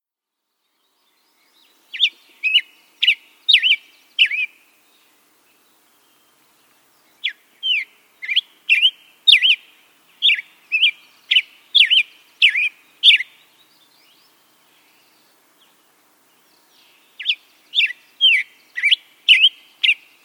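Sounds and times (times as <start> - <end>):
Hepatic Tanager: 1.9 - 4.7, 7.0 - 15.8, 16.4 - 20.2.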